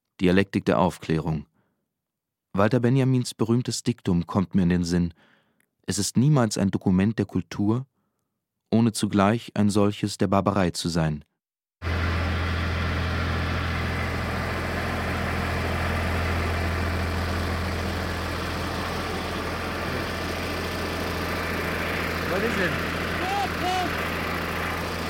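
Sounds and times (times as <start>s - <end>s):
speech: 0.2s - 1.5s, 2.6s - 7.9s, 8.7s - 11.3s
tractor-driven mill engine running: 11.8s - 25.0s.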